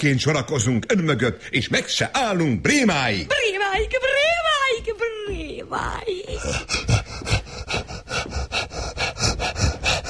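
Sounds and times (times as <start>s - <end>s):
speech: 0.0s - 7.0s
heavy rapid panting: 6.1s - 10.0s.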